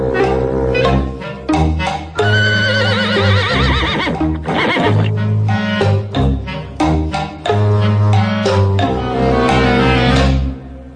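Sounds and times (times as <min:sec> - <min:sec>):
busy rhythmic music: 0:00.0 - 0:10.9
steady clopping beat: 0:01.5 - 0:09.1
horse whinnying: 0:02.2 - 0:05.2.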